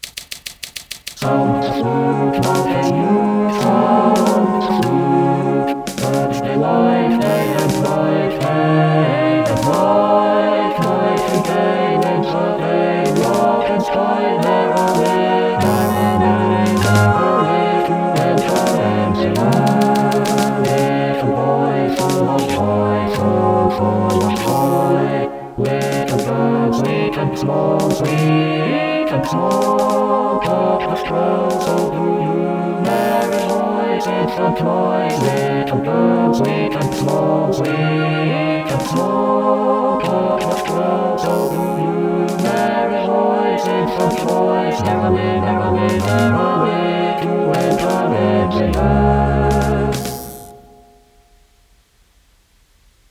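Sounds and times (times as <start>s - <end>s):
flute: 1.2s - 51.1s.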